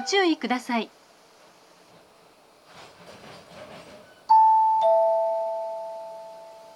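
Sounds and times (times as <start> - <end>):
two-tone chime on a Japanese railway station platform: 4.3 - 6.7.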